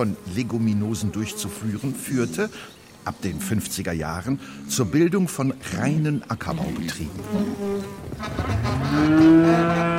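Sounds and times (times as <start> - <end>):
flies buzzing: 0.0 - 5.1, 5.7 - 9.9
speech: 0.0 - 9.9
cow mooing: 7.2 - 9.9.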